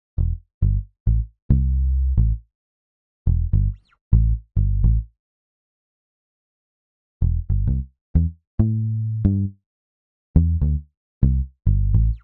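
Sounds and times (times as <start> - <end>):
island reggae bass: 0.2 - 2.4, 3.3 - 5.0, 7.2 - 9.5, 10.4 - 12.2.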